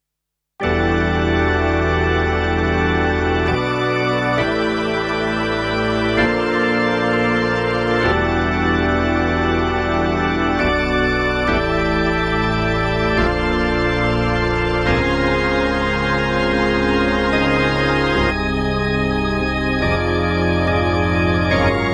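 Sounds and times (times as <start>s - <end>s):
electric organ mix on a digital piano: 0.6s - 21.9s.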